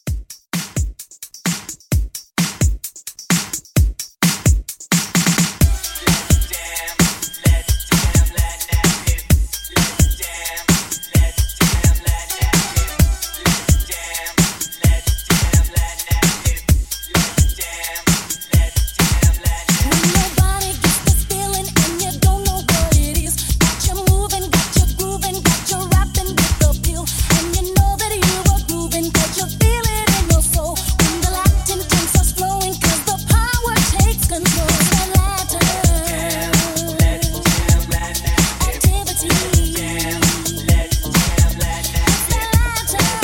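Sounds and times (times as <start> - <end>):
90s old school hip hop drum beat: 0.0 - 43.2.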